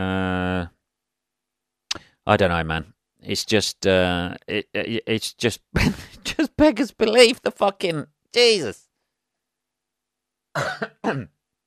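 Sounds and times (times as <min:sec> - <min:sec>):
speech: 0:02.3 - 0:08.8, 0:10.6 - 0:11.4
person coughing harshly: 0:10.6 - 0:11.4.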